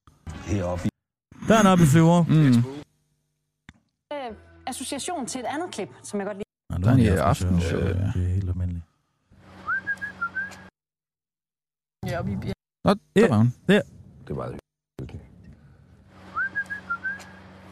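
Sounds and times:
speech: 0.5 - 0.9, 1.5 - 2.8, 4.7 - 8.9, 12.1 - 14.6
man whistling a short melodic phrase: 9.6 - 10.7, 16.3 - 17.4.

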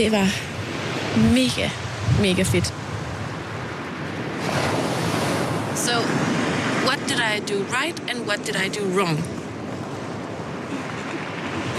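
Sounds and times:
speech: 0.0 - 2.8, 6.8 - 9.4
ocean waves breaking: 0.0 - 11.7
wind rumble: 0.0 - 11.7.

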